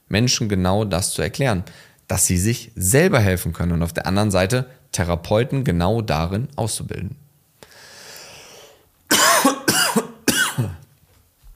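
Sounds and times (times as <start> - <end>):
speech: 0.1 - 7.2
soft breathy noise: 1.6 - 2.1, 7.6 - 8.9
loud harsh coughs: 9.1 - 10.8.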